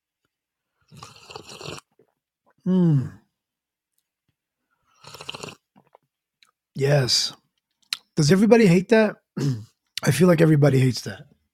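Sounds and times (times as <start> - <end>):
loud slurping sip of coffee: 0.8 - 2.1, 4.9 - 6.0
speech: 2.6 - 3.2, 6.8 - 7.4, 8.2 - 11.3.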